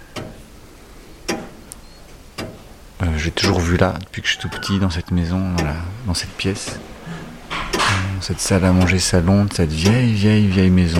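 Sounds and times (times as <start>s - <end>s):
very old weight-driven clock ticking in the dining-living room of an old house: 0.0s - 10.9s
speech: 3.2s - 6.9s, 8.2s - 10.9s.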